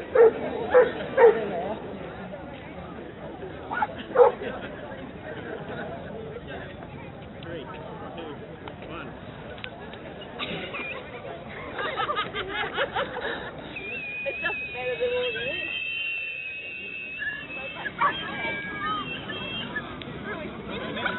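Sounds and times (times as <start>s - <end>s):
murmur of a flash mob of people talking in a mall: 0.0s - 21.1s
dogs barking excitedly at a flash mob in a mall: 0.1s - 1.4s, 4.2s - 4.4s
laughter: 3.7s - 6.1s, 10.2s - 21.1s.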